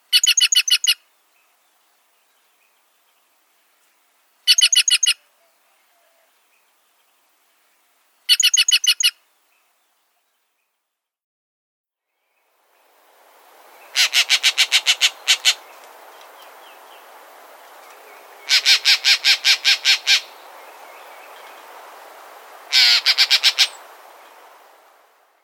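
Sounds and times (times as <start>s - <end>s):
green jay calling: 0.0s - 1.0s, 4.5s - 5.2s, 8.3s - 9.2s, 13.6s - 25.0s.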